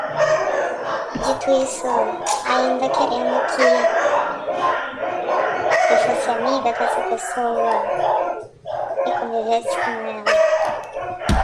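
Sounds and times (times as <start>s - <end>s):
laughter: 0.0s - 8.5s
dogs barking and yipping: 0.0s - 11.4s
speech: 1.3s - 5.0s, 5.9s - 8.5s, 9.1s - 10.5s.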